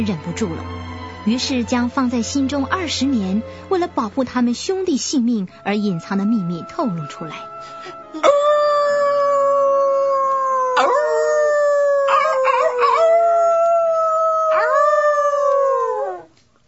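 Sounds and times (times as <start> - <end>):
speech: 0.0 - 8.5
mournful wolf-like howling chorus: 8.2 - 16.3.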